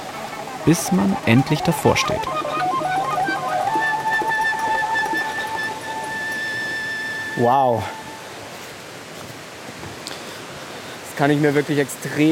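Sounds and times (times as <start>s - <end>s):
faint sustained tones: 0.0s - 8.8s
rushing waterfall: 0.0s - 12.2s
speech: 0.6s - 2.6s, 7.4s - 8.0s, 11.2s - 12.2s.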